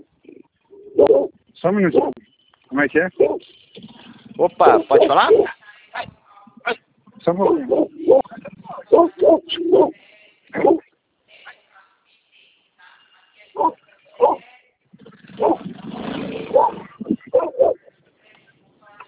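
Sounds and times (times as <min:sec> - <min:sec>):
dog barking heard during a phone call: 0:01.0 - 0:02.2, 0:03.2 - 0:03.5, 0:04.6 - 0:05.5, 0:07.3 - 0:08.2, 0:08.8 - 0:10.8, 0:13.6 - 0:14.4, 0:15.4 - 0:15.6, 0:16.5 - 0:17.9
speech: 0:01.0 - 0:03.5, 0:04.4 - 0:06.1, 0:06.7 - 0:08.2, 0:09.3 - 0:10.0.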